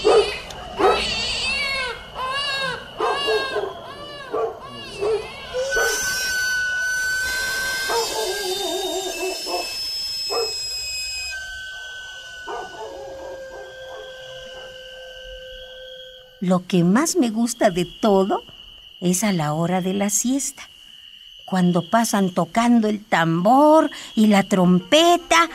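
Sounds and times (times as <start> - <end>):
dog yipping and barking at night: 0.0 - 1.2, 3.0 - 6.0, 7.9 - 8.5, 9.1 - 10.6, 12.5 - 14.7
baby crying at night: 0.0 - 6.2
sweet potato vendor's whistle: 2.6 - 25.5
speech: 16.5 - 20.8, 21.5 - 25.5.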